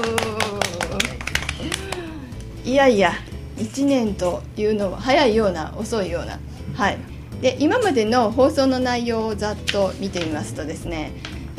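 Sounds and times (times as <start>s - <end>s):
handclaps at a first-anniversary celebration: 0.0s - 2.3s
speech: 2.7s - 11.5s.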